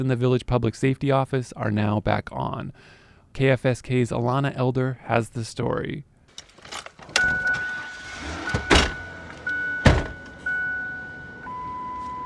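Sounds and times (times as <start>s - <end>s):
speech: 0.0s - 6.1s
car doors shutting in a small village town: 6.6s - 12.2s
car electronic chime tone: 7.2s - 12.2s.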